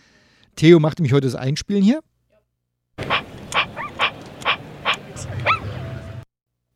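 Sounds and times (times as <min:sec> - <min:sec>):
speech: 0:00.6 - 0:02.1
robot dog electronic yaps and whimper tones: 0:03.1 - 0:05.9.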